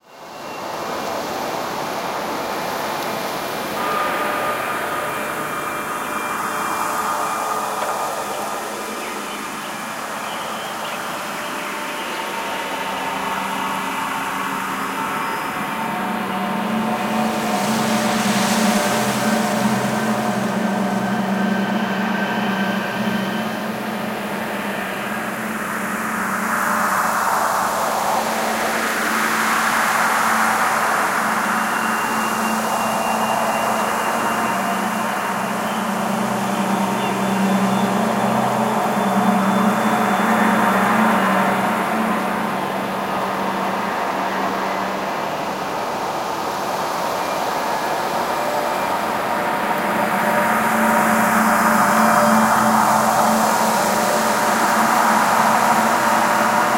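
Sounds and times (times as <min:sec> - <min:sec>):
peaceful ambience: 0:00.0 - 0:56.7.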